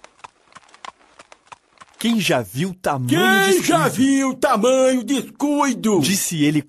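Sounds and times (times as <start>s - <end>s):
horse hooves of a horse-drawn cart clip-clopping: 0.0s - 2.6s
speech: 2.0s - 6.6s.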